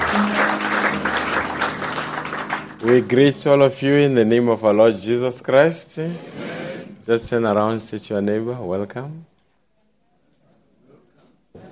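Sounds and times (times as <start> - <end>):
congregation applauding at a church service: 0.0 - 4.2
speech: 2.8 - 6.4, 7.1 - 9.3.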